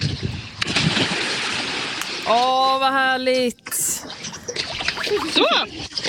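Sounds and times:
water splashing as people bathe in a river: 0.0s - 6.0s
speech: 2.3s - 4.1s, 5.1s - 6.0s.

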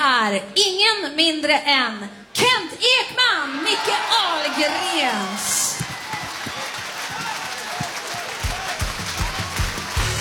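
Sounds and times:
speech: 0.2s - 5.6s
crowd noise: 3.0s - 10.1s
audience clapping: 4.4s - 10.1s.

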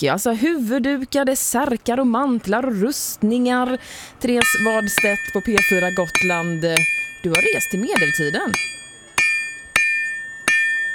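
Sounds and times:
speech: 0.0s - 8.8s
medieval-style blacksmith hammering metal at a market in Visby on Gotland: 3.6s - 10.9s.

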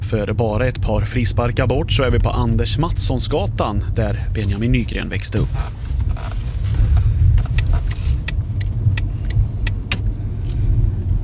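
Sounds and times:
car driving along a residential street: 0.0s - 11.2s
steady low car engine and road rumble: 0.0s - 11.2s
speech: 0.1s - 5.8s
evenly spaced sharp ticks: 7.5s - 9.8s.

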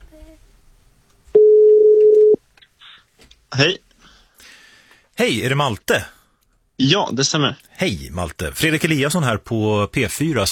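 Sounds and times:
telephone line tone as a radio studio phones a caller: 1.4s - 2.4s
speech: 3.6s - 3.8s, 5.2s - 6.2s, 6.8s - 10.5s.

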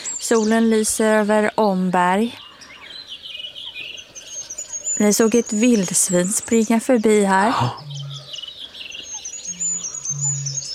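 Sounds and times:
speech: 0.3s - 2.5s, 5.0s - 7.9s
Goldcrest giving high thin calls by Lake Tåkern on a frosty morning: 2.4s - 10.7s.

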